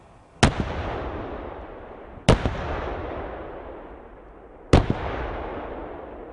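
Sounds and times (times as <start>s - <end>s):
heavy cannon shots from an armored vehicle: 0.4s - 6.3s.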